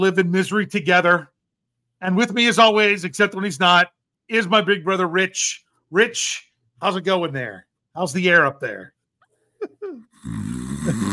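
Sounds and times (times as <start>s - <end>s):
speech: 0.0s - 1.3s, 2.0s - 9.0s, 9.6s - 11.1s
person imitating snoring: 10.0s - 11.1s.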